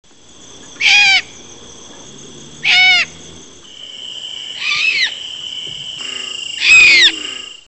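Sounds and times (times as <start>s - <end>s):
Javan barn owl Tyto alba screeching hoarsely: 0.8s - 1.3s, 2.6s - 3.1s, 4.5s - 5.2s, 6.0s - 7.6s.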